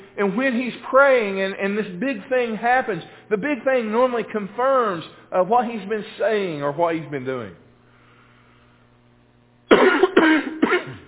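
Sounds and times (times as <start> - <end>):
speech: 0.2 - 7.6, 9.8 - 10.5
man coughing harshly from a tickle in his throat: 9.7 - 11.0.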